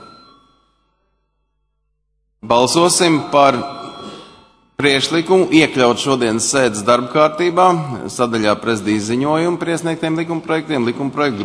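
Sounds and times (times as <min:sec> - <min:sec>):
speech: 0:02.5 - 0:03.8, 0:04.8 - 0:11.4
bell rung in a parliament chamber before a vote: 0:03.0 - 0:05.2.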